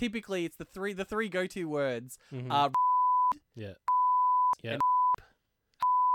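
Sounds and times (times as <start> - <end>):
speech: 0.0 - 3.9, 4.6 - 4.8
censor beeps added in editing: 2.8 - 5.2, 5.8 - 6.1.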